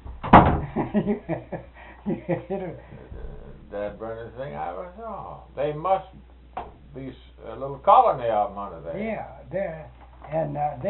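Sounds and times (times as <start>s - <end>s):
door closing thump: 0.0s - 0.8s
laughter: 0.6s - 3.6s
speech: 1.0s - 6.3s, 6.9s - 10.8s.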